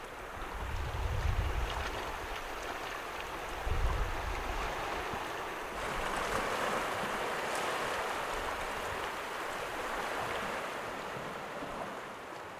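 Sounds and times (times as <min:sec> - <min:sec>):
ocean waves washing onto a beach in Japan: 0:00.0 - 0:12.5
gusty wind buffeting the microphone: 0:00.2 - 0:07.2.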